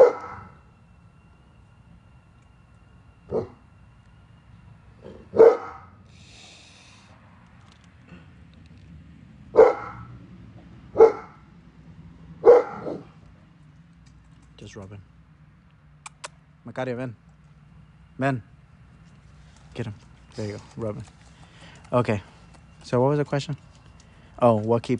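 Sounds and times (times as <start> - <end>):
dog barking: 0.0 - 0.6, 3.3 - 3.6, 5.2 - 6.0, 9.5 - 10.1, 10.9 - 11.4, 12.4 - 13.2
low steady hum: 0.0 - 9.6, 10.2 - 24.9
speech: 14.7 - 15.2, 16.7 - 17.2, 18.2 - 18.5, 19.8 - 21.3, 21.9 - 23.7, 24.4 - 24.9.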